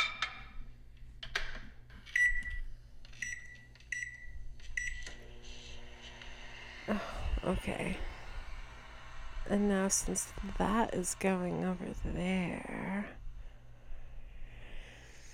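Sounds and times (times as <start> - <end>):
short electronic beeps from a microwave oven: 2.1 - 5.2
steady low hum of a microwave oven running: 2.1 - 13.9
speech: 6.9 - 8.1, 9.5 - 13.2.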